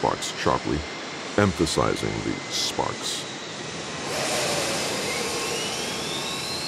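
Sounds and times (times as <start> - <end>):
speech: 0.0 - 3.3
aircraft's four jet engines roaring at full power with rising whine: 0.0 - 6.6.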